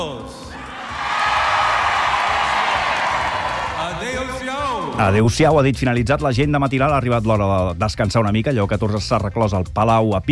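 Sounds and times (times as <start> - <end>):
large crowd of faithful shouting and cheering in a cathedral square: 0.0 - 5.4
speech: 5.0 - 10.3.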